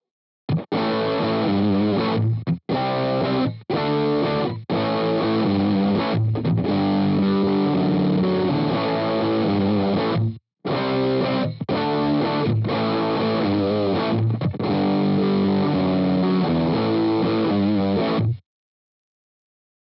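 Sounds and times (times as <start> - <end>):
layered heavy Les Paul electric guitar: 0.5 - 18.4.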